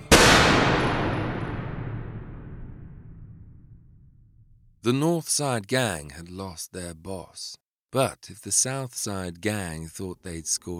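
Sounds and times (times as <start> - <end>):
gunshot at a man by a shop door: 0.0 - 4.1
speech: 4.8 - 10.7.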